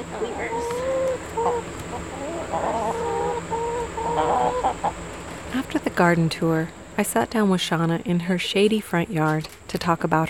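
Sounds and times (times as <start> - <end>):
chickens clucking near a coop: 0.0 - 5.6
low hum: 0.0 - 10.2
speech: 4.7 - 10.2.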